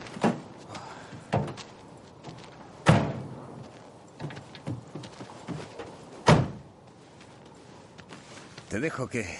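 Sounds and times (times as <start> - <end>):
low outdoor ambience: 0.0 - 9.3
car doors slamming shut: 2.8 - 3.2, 6.2 - 6.6
speech: 8.7 - 9.3.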